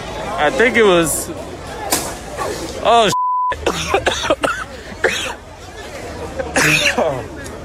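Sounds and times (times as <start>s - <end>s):
murmur of agitated voices: 0.0s - 7.6s
speech: 0.4s - 1.5s, 2.8s - 4.1s
people coughing harshly from tear gas: 3.5s - 5.5s, 6.4s - 7.2s.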